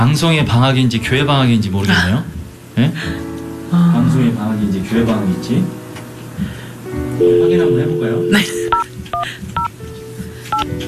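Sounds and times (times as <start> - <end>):
speech: 0.0 - 5.8, 6.4 - 9.6
dual-pitched telephone keypad dialing tones during a radio broadcast: 7.2 - 8.8.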